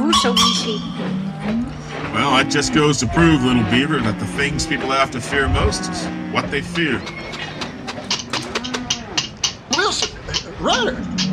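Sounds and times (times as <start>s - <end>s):
cattle mooing while being loaded: 0.0s - 9.6s
speech: 0.1s - 7.4s, 10.6s - 11.2s
sharp knocks: 7.0s - 11.3s.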